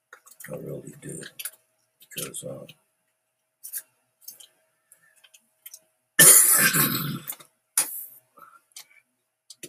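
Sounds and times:
speech: 0.5s - 1.4s, 2.2s - 2.8s
harsh coughing from a smoker: 6.2s - 7.3s.

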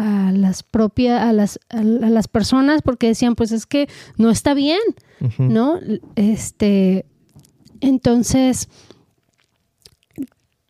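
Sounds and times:
speech: 0.5s - 7.1s, 7.8s - 8.9s
voice imitating chewing food with wet mouth smacks: 9.1s - 10.6s.

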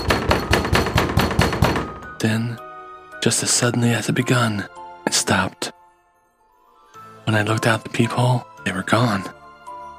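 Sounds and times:
heavy pounding on a door: 0.0s - 2.1s
speech: 2.2s - 2.6s, 3.2s - 5.8s, 7.3s - 9.4s.

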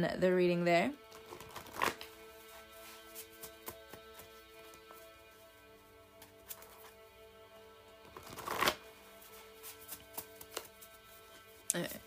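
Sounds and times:
speech: 0.0s - 1.0s
tarot cards being shuffled: 1.1s - 4.9s, 6.2s - 7.0s, 8.1s - 12.0s.

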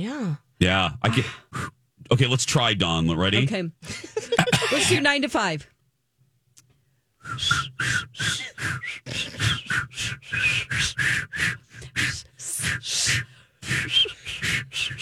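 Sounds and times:
speech: 0.0s - 5.7s, 7.2s - 15.0s
failed whistling attempt with breathy airy puffs: 1.5s - 1.8s, 7.2s - 15.0s
laughter: 3.8s - 5.1s, 13.6s - 14.5s.

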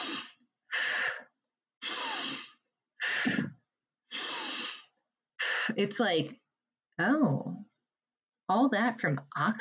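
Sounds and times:
forceful breathing in through nose and out through mouth: 0.0s - 5.8s
speech: 5.8s - 6.4s, 7.0s - 7.7s, 8.5s - 9.6s.

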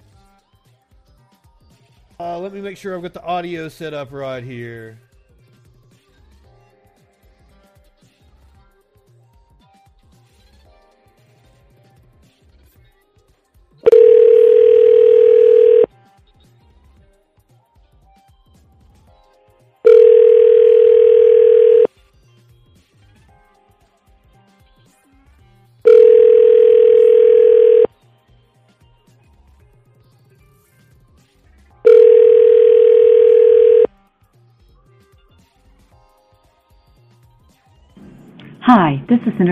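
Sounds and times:
speech: 2.2s - 5.1s, 39.1s - 39.4s
electronic ringback tone from an outgoing phone call: 13.9s - 15.9s, 19.8s - 21.9s, 25.9s - 27.9s, 31.8s - 33.9s.

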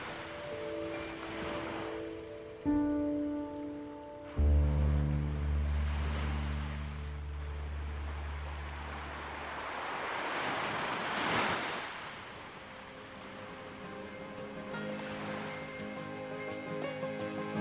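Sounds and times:
ocean waves breaking on shore: 0.0s - 17.5s
low sustained humming tones: 2.3s - 9.7s.

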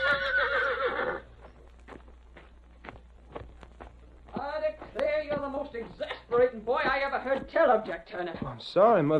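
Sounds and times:
horse neighing: 0.0s - 1.3s
hoof clops: 0.0s - 9.1s
speech: 7.6s - 9.1s.

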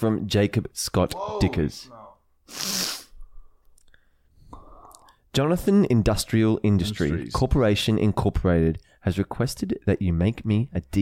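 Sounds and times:
speech: 0.0s - 2.9s, 5.3s - 11.0s
loud sneeze: 2.5s - 3.1s.

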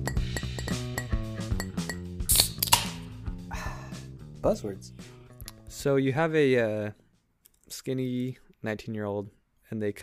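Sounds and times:
glasses clinking in a toast: 0.0s - 2.0s
steady tonal musical background: 0.0s - 7.3s
speech: 4.4s - 5.0s, 5.8s - 7.0s, 7.8s - 10.0s.

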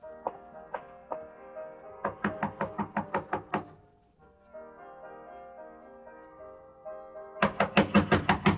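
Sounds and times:
soft musical backing: 0.0s - 8.5s
knocking on a door: 2.0s - 3.8s, 7.4s - 8.5s.

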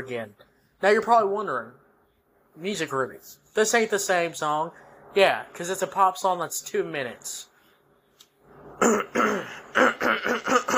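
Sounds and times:
speech: 0.0s - 1.8s, 2.6s - 7.5s, 8.8s - 10.7s
person clearing throat: 8.8s - 10.7s.

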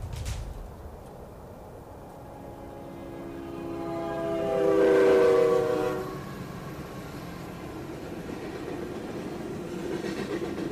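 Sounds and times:
train rumbling along railway tracks: 0.0s - 10.7s
train horn: 2.1s - 7.1s.

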